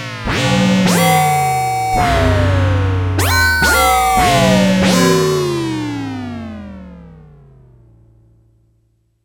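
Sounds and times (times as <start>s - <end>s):
space gong: 0.5s - 6.3s.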